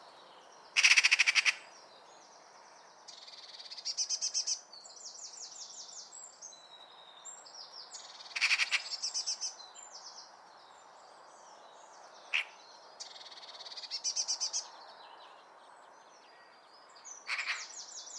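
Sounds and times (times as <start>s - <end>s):
Eurasian magpie Pica pica giving harsh rattling chatter: 0.8s - 1.6s, 17.3s - 17.7s.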